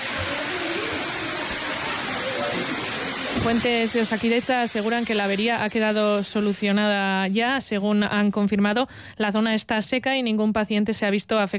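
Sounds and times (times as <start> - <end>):
large amount of water pouring down indoors: 0.0 - 7.7
speech: 3.4 - 11.5.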